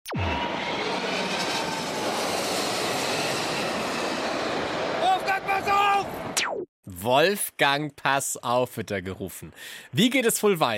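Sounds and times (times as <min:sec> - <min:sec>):
airplane landing on a runway: 0:00.1 - 0:06.7
speech: 0:06.8 - 0:10.7.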